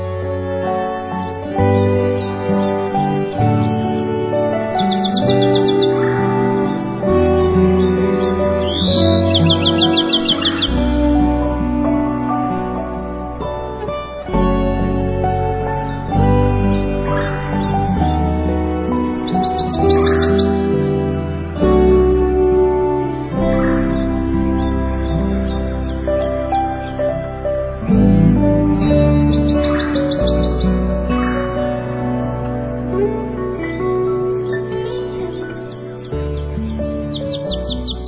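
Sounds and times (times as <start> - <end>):
gentle instrumental music: 0.0 - 38.0
bright bird trills: 3.8 - 6.8, 7.8 - 10.9, 18.6 - 20.7, 28.7 - 31.4, 36.6 - 38.0.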